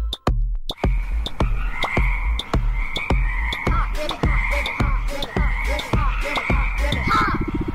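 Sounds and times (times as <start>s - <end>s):
frog croaking: 0.8s - 7.7s.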